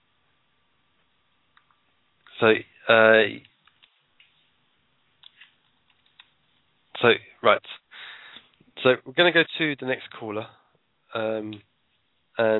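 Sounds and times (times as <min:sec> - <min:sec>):
speech: 0:02.4 - 0:03.5, 0:07.0 - 0:07.8, 0:08.8 - 0:11.7, 0:12.4 - 0:12.5
computer keyboard typing: 0:05.2 - 0:06.4.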